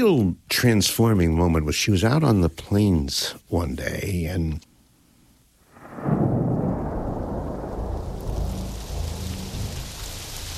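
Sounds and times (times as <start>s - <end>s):
speech: 0.0s - 4.7s
low rumble of thunder: 5.7s - 10.5s
heavy rain pouring down: 5.8s - 10.5s.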